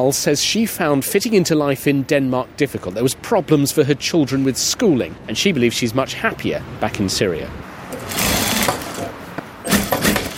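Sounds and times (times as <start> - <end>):
speech: 0.0 - 8.4
sewing machine running in a workshop in Denmark: 8.1 - 8.9, 9.7 - 10.3.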